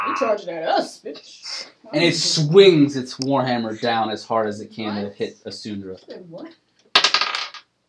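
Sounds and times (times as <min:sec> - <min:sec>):
speech: 0:00.1 - 0:06.6
dice rolling on a hard tabletop: 0:06.9 - 0:07.7.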